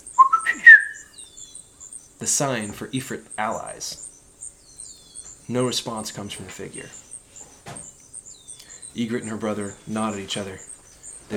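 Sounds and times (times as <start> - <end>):
person whistling a short signal: 0.1 - 1.1
speech: 2.2 - 4.1, 5.5 - 7.0, 9.0 - 10.7.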